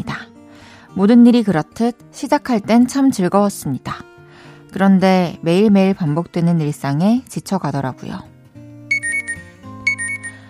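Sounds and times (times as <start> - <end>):
speech: 1.0 - 4.1, 4.7 - 8.3
electronic alarm clock beeping: 8.9 - 10.4.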